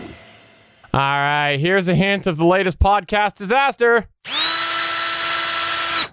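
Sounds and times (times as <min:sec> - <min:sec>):
speech: 0:00.9 - 0:04.1
power drill whirring: 0:04.3 - 0:06.1.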